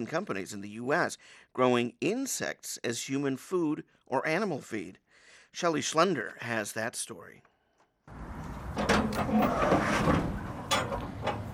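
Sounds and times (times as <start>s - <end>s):
speech: 0.0s - 7.5s, 8.8s - 10.2s
heavy shipping container door swinging open with scraping: 8.1s - 11.5s
metal latch of a shipping container clunking and creaking: 8.1s - 11.5s.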